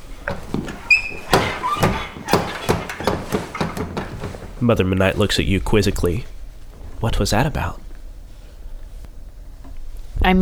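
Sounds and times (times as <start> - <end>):
hinged kitchen door creaking: 0.0 - 8.0
swinging kitchen door knocking with dull thumps: 0.0 - 10.0
speech: 4.6 - 6.3, 7.0 - 7.8, 10.2 - 10.4.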